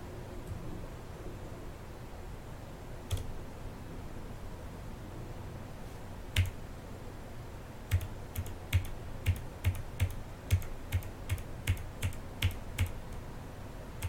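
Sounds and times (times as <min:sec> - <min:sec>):
low hum: 0:00.0 - 0:14.0
computer keyboard keys clicking: 0:03.1 - 0:03.3, 0:06.4 - 0:06.6, 0:07.9 - 0:13.0.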